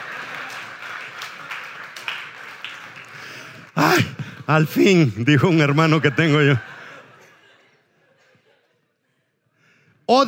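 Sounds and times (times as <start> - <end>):
audience applause: 0.0 - 7.0
speech: 3.8 - 6.7
laughter: 3.8 - 9.4.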